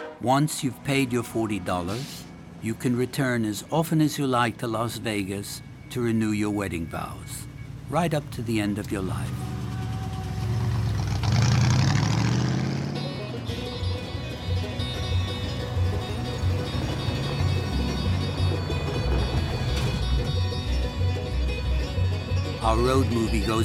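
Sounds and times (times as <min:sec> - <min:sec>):
speech: 0:00.2 - 0:09.5, 0:22.6 - 0:23.6
mud-covered Chevrolet car engine revving and pulling away: 0:07.4 - 0:23.6.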